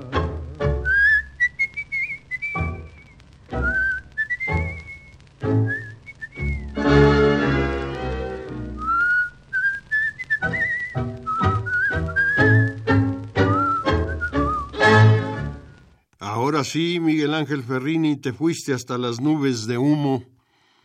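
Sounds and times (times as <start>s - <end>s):
person whistling a tango melody: 0.1s - 7.5s, 8.6s - 15.8s
speech: 16.7s - 20.4s.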